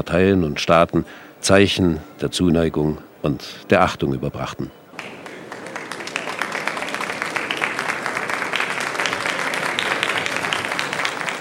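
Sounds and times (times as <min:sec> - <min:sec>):
speech: 0:00.0 - 0:05.1
large indoor crowd of guests applauding at a state reception: 0:04.9 - 0:11.4.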